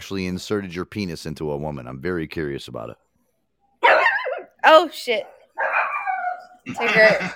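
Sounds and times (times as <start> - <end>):
speech: 0.0 - 3.1, 4.7 - 5.8, 6.6 - 7.3
dog howling: 3.8 - 4.5, 5.6 - 6.7
dog barking at someone outside the house: 3.8 - 4.6, 5.2 - 6.6.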